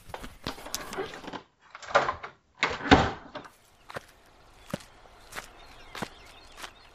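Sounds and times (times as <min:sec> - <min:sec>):
footsteps of a woman walking away: 0:00.0 - 0:01.0, 0:03.5 - 0:06.9
apartment door clattering, swinging and shutting: 0:00.5 - 0:03.5.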